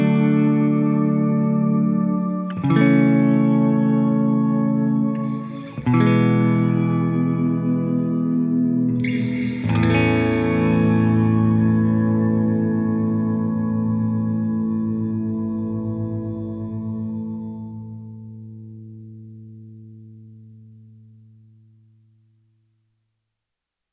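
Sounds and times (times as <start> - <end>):
ambient swelling baritone chord with reverb: 0.1 - 18.9.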